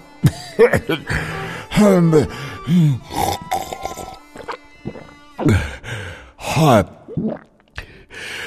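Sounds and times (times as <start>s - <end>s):
person gasping and panting, catching their breath: 1.0s - 3.5s, 5.4s - 6.4s, 7.8s - 8.4s.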